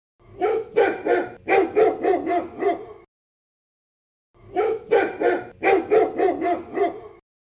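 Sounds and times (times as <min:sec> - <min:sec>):
dog barking: 0:00.3 - 0:03.1, 0:04.5 - 0:07.2.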